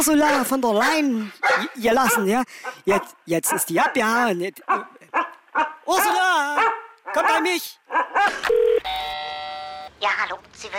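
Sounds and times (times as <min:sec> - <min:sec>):
speech: 0:00.0 - 0:09.1, 0:10.0 - 0:10.7
short sharp dog-like yelps: 0:01.4 - 0:02.8, 0:04.7 - 0:08.5
two-tone doorbell chime: 0:08.8 - 0:09.9.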